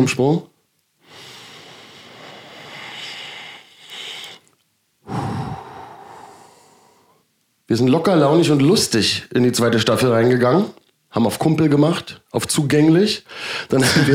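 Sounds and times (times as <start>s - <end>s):
speech: 0.0s - 0.5s, 7.7s - 14.1s
deep breath in: 1.0s - 7.3s, 13.3s - 13.7s.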